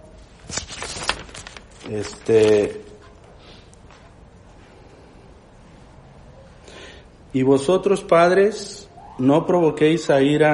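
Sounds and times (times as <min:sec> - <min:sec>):
paper sheets being shifted: 0:00.2 - 0:04.1
speech: 0:01.9 - 0:02.9, 0:07.4 - 0:10.5.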